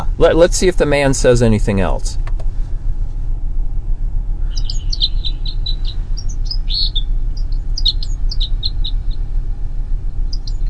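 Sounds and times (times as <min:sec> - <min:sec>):
steady low rumble of traffic: 0:00.0 - 0:10.6
speech: 0:00.2 - 0:02.3
red crossbills giving short sharp chip-like calls: 0:04.4 - 0:09.3, 0:10.3 - 0:10.6.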